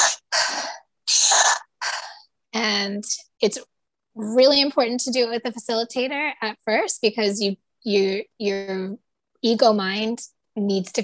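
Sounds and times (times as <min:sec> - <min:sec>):
exaggerated inhales and exhales in a circular breathing exercise: 0:00.0 - 0:02.4
speech: 0:02.9 - 0:11.0.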